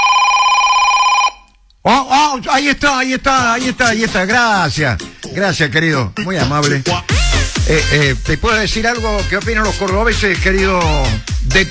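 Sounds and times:
telephone ringing tone on an outgoing call: 0.0s - 1.5s
speech: 1.8s - 7.1s, 7.7s - 11.6s.

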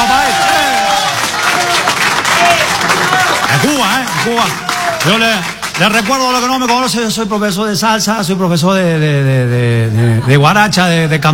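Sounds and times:
audience applause: 0.0s - 6.8s
speech: 4.2s - 11.3s.

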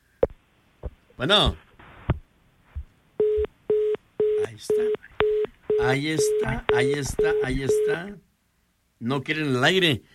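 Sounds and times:
speech: 1.2s - 1.6s, 5.8s - 8.3s, 9.0s - 10.1s
telephone line tone on an incoming on-air call: 3.2s - 8.1s.

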